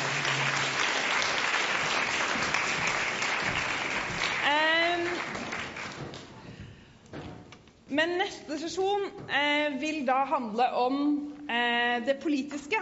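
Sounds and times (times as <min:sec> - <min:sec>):
audience applause at a Norwegian business conference: 0:00.0 - 0:06.3
speech: 0:08.0 - 0:12.8.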